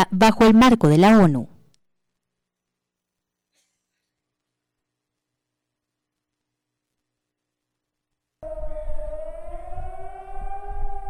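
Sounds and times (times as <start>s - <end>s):
speech: 0.0s - 1.5s
air raid siren wailing: 8.5s - 11.0s.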